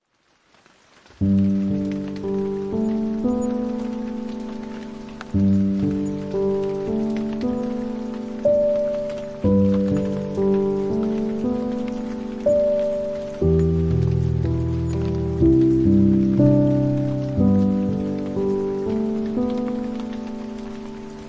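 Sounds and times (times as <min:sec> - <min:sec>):
rain: 0:00.0 - 0:21.2
piano: 0:01.0 - 0:21.2
baby lullaby: 0:01.2 - 0:21.2.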